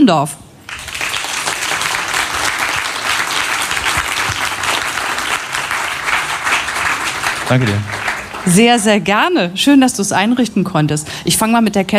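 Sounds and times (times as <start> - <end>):
speech: 0.0 - 0.4, 7.5 - 11.9
sustained crowd applause: 0.7 - 9.0.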